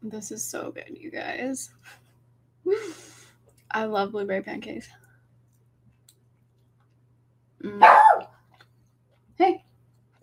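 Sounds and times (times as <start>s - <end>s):
speech: 0.0s - 5.0s, 7.6s - 8.2s, 9.4s - 9.7s
dog barking: 7.8s - 8.4s.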